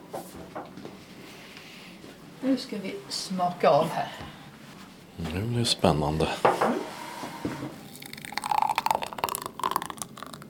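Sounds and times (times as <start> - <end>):
speech: 2.4 - 4.3, 5.2 - 6.8
thick spinach, pear and pineapple smoothie pouring into a glass: 7.8 - 10.4.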